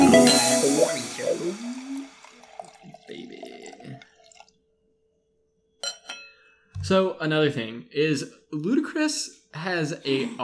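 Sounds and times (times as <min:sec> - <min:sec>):
drink pouring into a glass for a refill: 0:00.2 - 0:04.6
glass clinks: 0:05.8 - 0:06.5
speech: 0:07.2 - 0:10.4.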